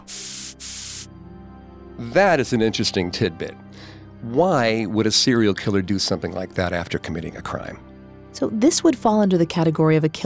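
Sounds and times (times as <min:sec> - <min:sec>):
aerosol spray paint can spraying: 0:00.0 - 0:01.1
speech: 0:02.0 - 0:03.6, 0:04.2 - 0:10.2.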